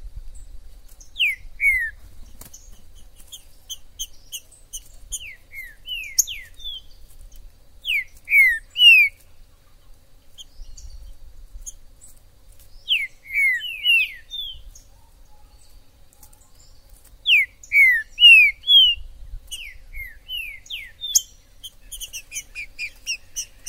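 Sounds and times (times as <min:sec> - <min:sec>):
faint high chirps: 0:00.3 - 0:23.6
green-winged saltator singing in the wild in a forest: 0:01.0 - 0:07.0, 0:07.8 - 0:09.2, 0:12.8 - 0:15.8, 0:16.5 - 0:23.6.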